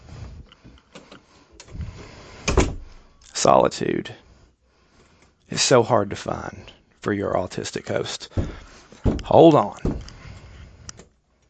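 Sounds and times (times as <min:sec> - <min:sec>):
door pushed shut with a firm thud: 0:02.5 - 0:02.9, 0:08.4 - 0:10.1
speech: 0:03.4 - 0:04.3, 0:05.6 - 0:10.1
soft knocks and rattles of door handling: 0:08.4 - 0:10.2.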